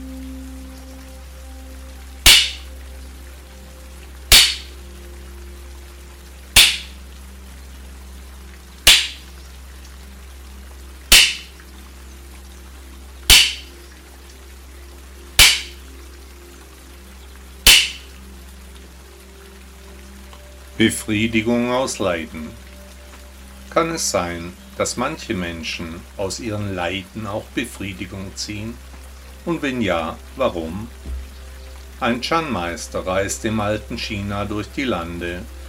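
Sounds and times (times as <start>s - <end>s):
quiet low hum: 0.0s - 35.6s
bamboo halves clapping together: 2.2s - 2.7s, 4.3s - 4.7s, 6.6s - 7.0s, 8.8s - 9.3s, 11.1s - 11.6s, 13.3s - 13.7s, 15.4s - 15.8s, 17.6s - 18.1s
speech: 20.8s - 22.6s, 23.8s - 31.0s, 32.0s - 35.6s.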